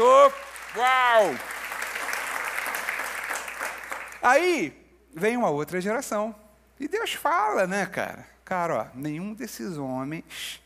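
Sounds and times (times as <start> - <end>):
speech: 0.0 - 1.6, 4.2 - 10.6
church congregation applauding during a service: 0.0 - 4.5.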